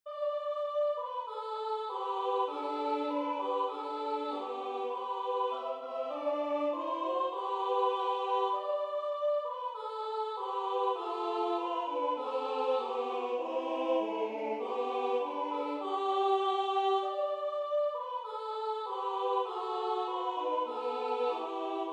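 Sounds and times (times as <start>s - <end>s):
Bucovina carol singing: 0.2s - 21.9s.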